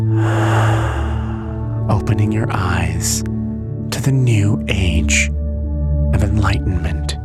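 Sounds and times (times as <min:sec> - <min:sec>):
deep breath exhaled during a guided meditation: 0:00.1 - 0:01.9
steady low humming drone: 0:00.1 - 0:02.0
speech: 0:02.2 - 0:03.3, 0:04.0 - 0:05.4, 0:06.2 - 0:07.1.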